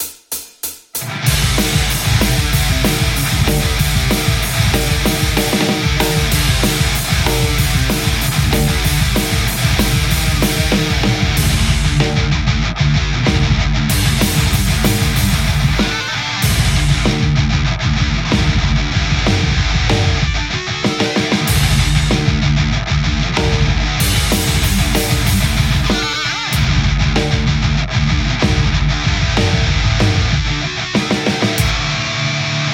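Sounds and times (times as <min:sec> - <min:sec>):
Telecaster electric guitar playing metal: 0:01.0 - 0:32.7.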